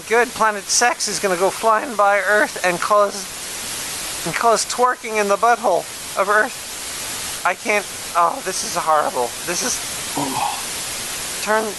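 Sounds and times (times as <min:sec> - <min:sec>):
speech: 0:00.0 - 0:03.4, 0:04.2 - 0:06.7, 0:07.4 - 0:10.6, 0:11.4 - 0:11.7
static hiss: 0:00.0 - 0:11.7
human voice: 0:10.2 - 0:10.6.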